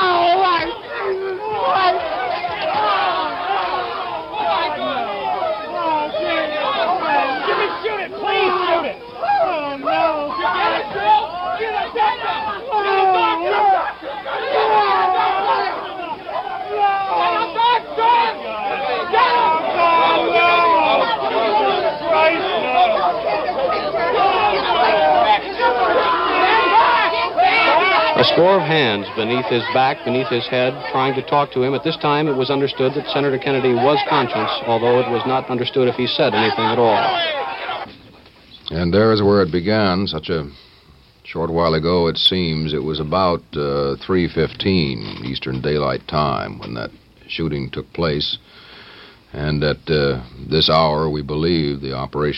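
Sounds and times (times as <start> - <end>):
dense crowd screaming and shouting around a wounded man in a hotel kitchen: 0.0 - 38.1
speech: 28.4 - 37.4, 38.7 - 40.6, 41.3 - 48.6, 49.3 - 52.3.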